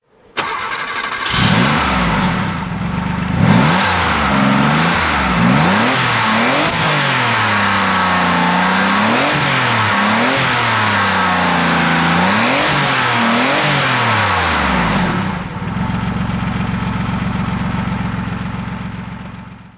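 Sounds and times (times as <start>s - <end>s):
1988 Porsche 959 engine throttle revving: 0.4s - 19.0s.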